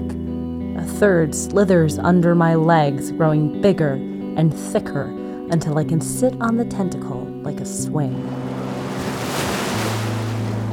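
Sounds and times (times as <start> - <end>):
speech: 0.8 - 8.5
ocean waves surging: 8.1 - 10.7.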